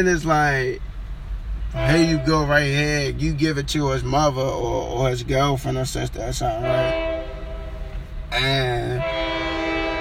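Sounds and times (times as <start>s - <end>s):
speech: 0.0s - 0.9s, 1.7s - 7.1s, 8.3s - 9.1s
steady rumbling rail noise of passing train: 0.8s - 9.9s
passing train horn blast: 1.7s - 2.5s, 6.6s - 9.9s.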